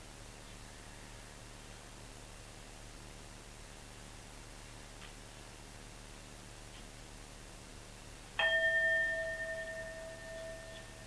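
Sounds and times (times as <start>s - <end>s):
singing bowl struck during a guided breathing meditation: 8.4s - 11.0s.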